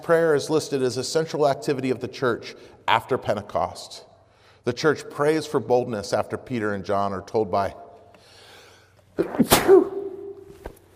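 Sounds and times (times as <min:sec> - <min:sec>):
speech: 0:00.0 - 0:07.8, 0:09.2 - 0:09.9
loud sneeze: 0:09.2 - 0:10.4.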